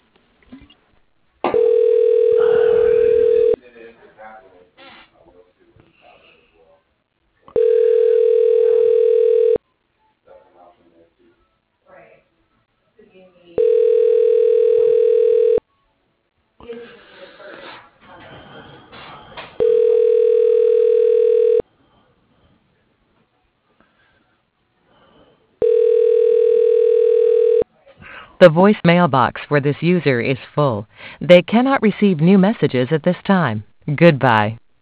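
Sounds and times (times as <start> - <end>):
telephone line tones while an extension is dialed: 1.5 - 3.6, 7.6 - 9.6, 13.6 - 15.6, 19.6 - 21.6, 25.6 - 27.6
speech: 28.4 - 34.6.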